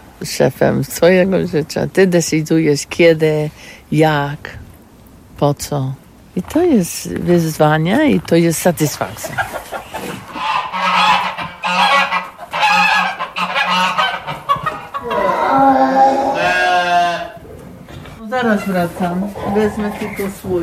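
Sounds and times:
speech: 0.2 - 4.6, 5.4 - 9.7, 18.4 - 20.6
goat bleating in quavering calls: 10.2 - 17.5.

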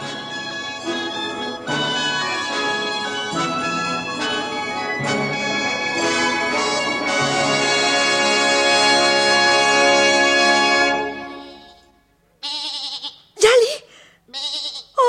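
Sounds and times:
sustained musical chord: 0.0 - 12.1
goat bleating: 11.4 - 13.4, 14.3 - 15.0.

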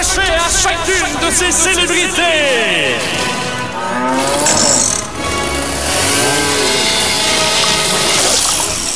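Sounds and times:
speech: 0.2 - 4.9
chainsaw sawing a cow in two: 3.8 - 8.9.

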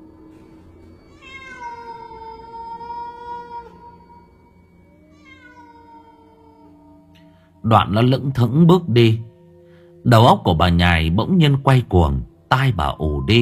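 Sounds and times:
black cat meowing in a courtyard: 1.1 - 4.2, 5.1 - 7.0
speech: 7.6 - 9.3, 10.0 - 13.3.

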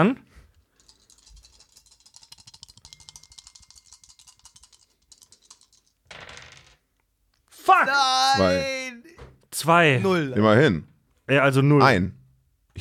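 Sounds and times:
speech: 0.0 - 0.2, 7.7 - 8.8, 9.6 - 12.2
three dice rolled during a shark-themed board game: 0.8 - 6.9.

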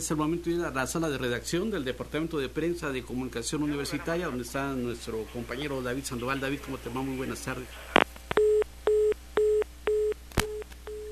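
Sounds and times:
speech: 0.0 - 8.0
telephone busy tone after a dropped call: 8.4 - 11.1.

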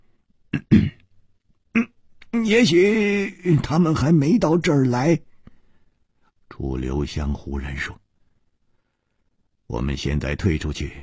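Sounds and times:
man coughing in short rough bursts: 0.6 - 1.0
speech: 2.4 - 5.3, 6.6 - 8.0, 9.7 - 11.0.

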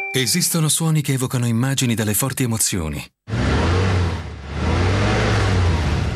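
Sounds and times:
speech: 0.1 - 3.2
Infiniti V6 high-performance diesel car engine revving: 3.3 - 6.1.

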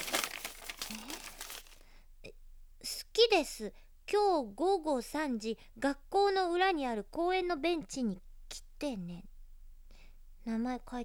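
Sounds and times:
paper love letter crinkling as it is opened: 0.0 - 1.8
speech: 3.2 - 9.3, 10.4 - 11.0.

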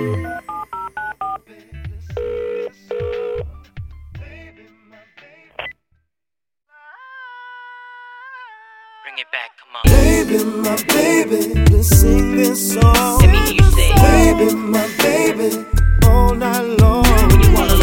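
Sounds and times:
touch-tone telephone keypad dialing tones within a song: 0.2 - 1.4
song beat: 9.9 - 15.4, 16.0 - 17.8.

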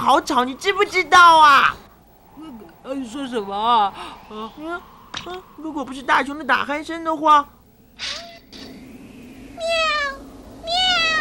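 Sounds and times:
speech: 0.1 - 1.8, 2.4 - 8.2
cat meowing: 9.6 - 11.1.

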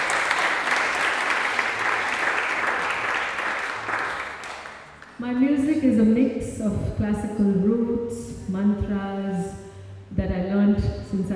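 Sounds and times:
audience applause at a live music event: 0.0 - 5.2
speech: 5.2 - 11.3.

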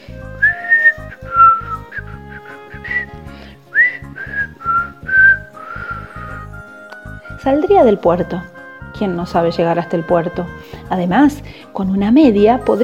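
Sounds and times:
soft rhythmic low accompaniment: 0.0 - 12.8
person whistling a cheerful bouncy tune: 0.1 - 7.4
speech: 7.4 - 12.8.

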